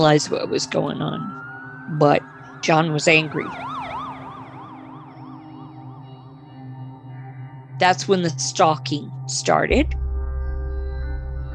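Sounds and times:
speech: 0.0 - 3.8, 7.8 - 10.0
fire truck siren wailing: 0.0 - 6.5
low fire truck engine rumble: 9.7 - 11.5.

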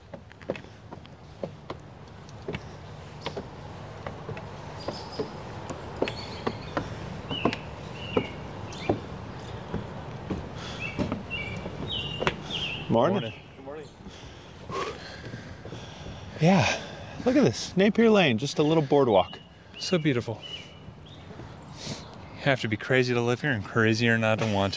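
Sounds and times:
outdoor birdsong of high thin chirps and short whistles: 4.6 - 17.2, 18.5 - 22.4
speech: 13.0 - 13.4, 16.4 - 20.5, 22.4 - 24.7.

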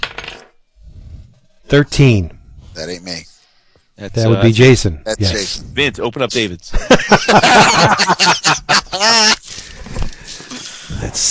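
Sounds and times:
dice clattering and rolling on a hard table: 0.0 - 0.6
speech: 1.7 - 3.3, 4.0 - 9.6
laughter: 6.7 - 9.7.

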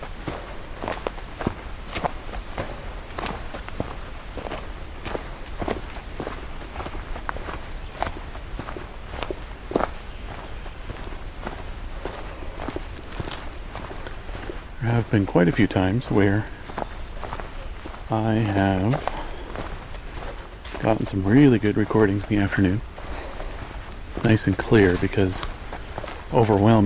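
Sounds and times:
footsteps of a person hiking outdoors: 0.0 - 26.8
speech: 15.1 - 16.6, 18.1 - 19.2, 20.9 - 22.9, 24.3 - 25.5, 26.3 - 26.8.

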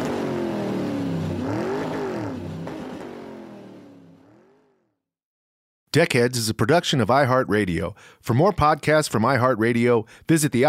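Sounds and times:
motorcycle engine revving and pulling away: 0.0 - 5.0
speech: 6.0 - 10.6.

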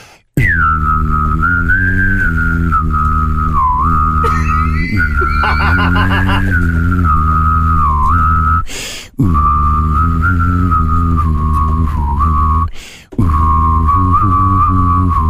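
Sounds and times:
hum-whistled tune with low hummed drone: 0.4 - 15.2
laughter: 4.2 - 6.7
person taking quick breaths: 8.7 - 9.2, 12.7 - 13.1.

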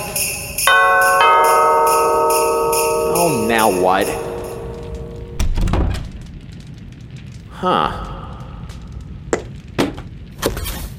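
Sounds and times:
sleigh bells jingling: 0.0 - 5.4
sustained bright ringing tones: 0.5 - 5.6
speech: 3.6 - 4.2, 7.6 - 8.1.

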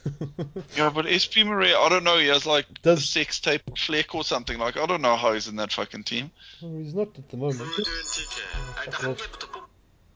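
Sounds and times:
speech: 0.0 - 9.6
mobile phone melodic notification tone: 7.6 - 9.6.

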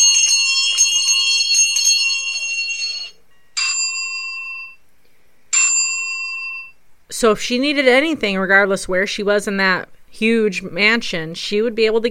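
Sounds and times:
bright metallic bells ringing: 0.0 - 4.8, 5.6 - 6.8
speech: 7.2 - 12.1.

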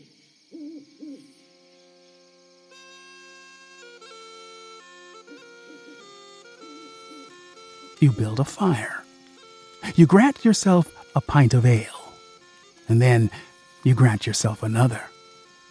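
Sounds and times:
far-off owl hooting at night: 0.0 - 1.5, 4.8 - 15.4
speech: 8.0 - 9.0, 9.8 - 12.0, 12.9 - 15.1.

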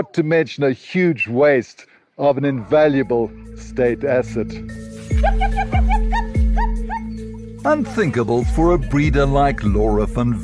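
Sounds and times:
speech: 0.1 - 6.1, 7.6 - 10.4
laughter: 5.1 - 7.1
caged police dogs barking and whimpering: 5.2 - 7.5.

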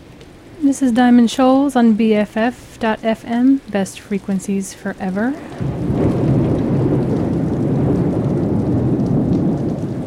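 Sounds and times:
heavy rain pouring down in a thunderstorm: 0.0 - 10.0
speech: 0.6 - 5.8
deep continuous rumble of thunder: 5.4 - 10.0.

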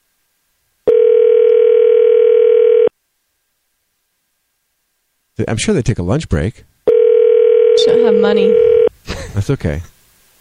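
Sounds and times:
electronic phone call ringing tone: 0.9 - 2.9, 6.9 - 8.9
speech: 5.4 - 6.7, 7.8 - 8.8, 9.4 - 9.9.

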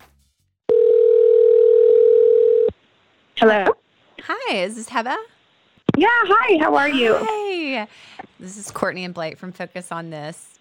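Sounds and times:
telephone dial tone for placing a call: 0.7 - 2.7
speech: 3.4 - 5.3, 6.0 - 10.5.

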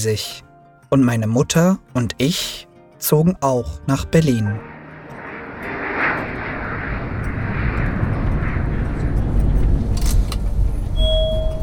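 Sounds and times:
speech: 0.0 - 4.7
airplane engines roaring while landing in Berlin: 3.7 - 11.6.

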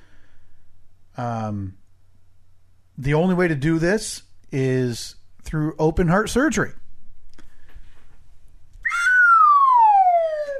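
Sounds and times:
speech: 1.2 - 1.8, 3.0 - 6.8
descending slide whistle: 8.8 - 10.5.

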